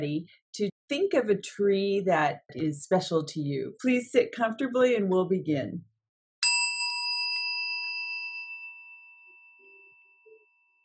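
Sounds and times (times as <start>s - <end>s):
speech: 0.0s - 5.9s
meditation chime ringing: 6.4s - 10.8s.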